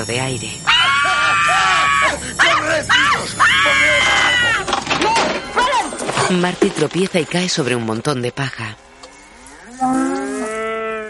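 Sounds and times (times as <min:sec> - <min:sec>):
speech: 0:00.0 - 0:05.1, 0:06.3 - 0:08.8
cow mooing in a barn: 0:09.5 - 0:11.0.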